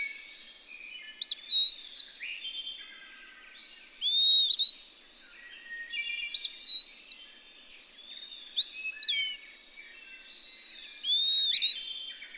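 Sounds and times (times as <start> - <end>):
bird song of clear whistled phrases with warbled start and gliding tail: 0.0 - 2.6, 4.0 - 4.8, 5.4 - 7.2, 8.1 - 12.3.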